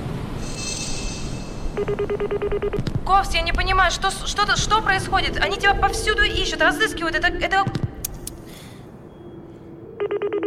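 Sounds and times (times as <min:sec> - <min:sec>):
low hum: 0:00.0 - 0:10.4
telephone ringing: 0:01.7 - 0:02.8, 0:10.0 - 0:10.4
speech: 0:01.8 - 0:07.8.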